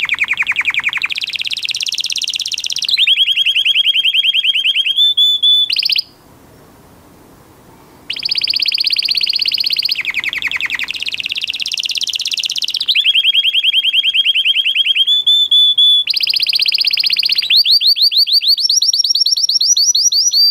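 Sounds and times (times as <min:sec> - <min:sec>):
male Belgian canary singing rolled trills: 0:00.0 - 0:06.2, 0:08.0 - 0:20.4.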